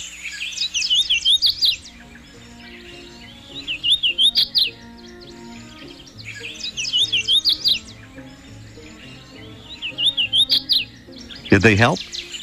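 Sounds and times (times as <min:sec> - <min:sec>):
hooded warbler Setophaga citrina singing: 0:00.0 - 0:12.4
speech: 0:11.5 - 0:12.1.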